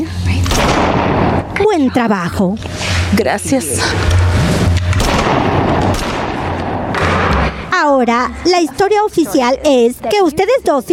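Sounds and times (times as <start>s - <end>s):
constant roar of noise and low rumbling: 0.0s - 10.9s
loud dense gunfire with sharp reports: 0.4s - 1.5s, 4.9s - 7.6s
speech: 1.8s - 4.2s, 5.3s - 6.1s, 7.9s - 10.9s.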